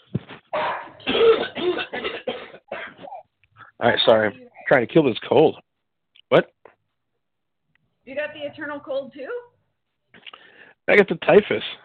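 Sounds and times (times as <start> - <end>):
harsh raspy coughing: 0.5 - 3.8
speech: 3.8 - 5.6, 6.3 - 6.5, 8.5 - 9.4, 10.9 - 11.8.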